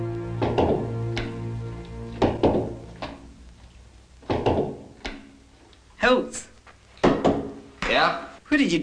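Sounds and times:
speech: 0.6s - 1.0s, 6.0s - 6.5s, 8.1s - 8.8s
baseball thudding against a wall: 2.2s - 3.2s, 4.2s - 5.3s, 7.0s - 7.6s.

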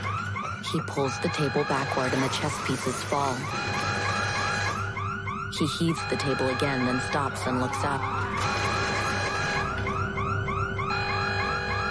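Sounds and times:
electronic alarm blaring from a wall-mounted speaker: 0.0s - 11.8s
speech: 0.7s - 3.8s, 5.6s - 8.6s.

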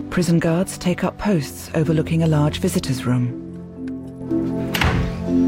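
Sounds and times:
speech: 0.2s - 3.4s
door opening into a prison visiting room: 4.7s - 5.3s.

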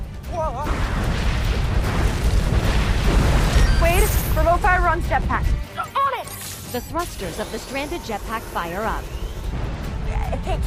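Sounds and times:
explosions erupting from slime at a dam: 0.6s - 5.5s
speech: 4.9s - 5.6s, 6.7s - 9.2s, 10.3s - 10.6s
warbling electronic chirp: 6.6s - 9.6s.

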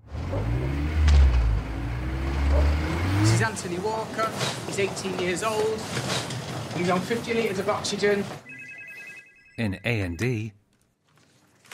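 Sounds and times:
silver hatchback car engine driving away: 0.0s - 4.5s
speech: 3.4s - 8.5s, 9.6s - 10.6s.

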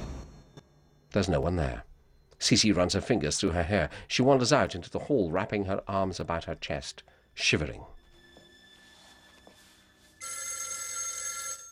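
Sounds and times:
faint hum: 0.0s - 10.2s
speech: 1.2s - 8.0s
telephone bell ringing in a house hallway: 10.1s - 11.7s.

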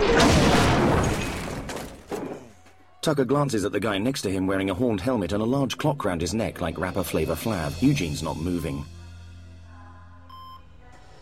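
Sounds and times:
metal shelving unit toppling over: 0.0s - 2.6s
speech: 3.0s - 9.0s.

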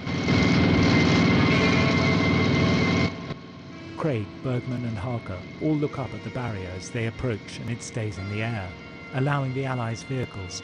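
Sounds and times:
motorbike engines roaring while riding past: 0.1s - 9.6s
speech: 4.0s - 10.6s.

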